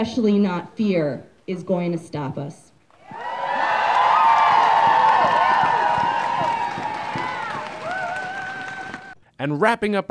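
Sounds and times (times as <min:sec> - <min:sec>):
speech: 0:00.0 - 0:03.2, 0:09.4 - 0:10.1
large crowd cheering and shouting at a rally: 0:03.0 - 0:09.2.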